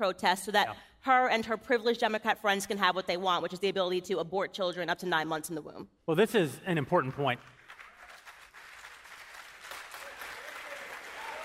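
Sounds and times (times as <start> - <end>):
speech: 0.0 - 7.6
crowd applauding: 7.0 - 11.4.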